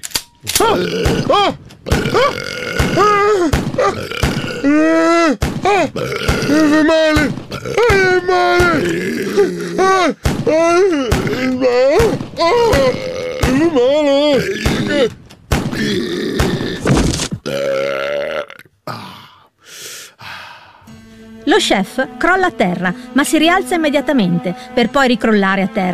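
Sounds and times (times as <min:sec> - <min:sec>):
speech: 0:00.4 - 0:15.2, 0:21.5 - 0:25.9
comical burps with wobbling pitch: 0:00.6 - 0:04.9, 0:05.8 - 0:06.9, 0:07.5 - 0:08.0, 0:08.7 - 0:09.9, 0:15.8 - 0:19.4.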